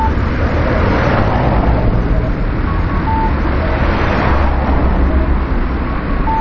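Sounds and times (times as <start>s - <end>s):
faint tonal beeps from the pedestrian crossing signal: 0.0s - 1.0s, 1.9s - 4.3s, 4.9s - 6.3s
dense street traffic at a pedestrian crossing near a train station: 0.0s - 6.3s
low rumble of passing cars and buses: 0.0s - 6.3s.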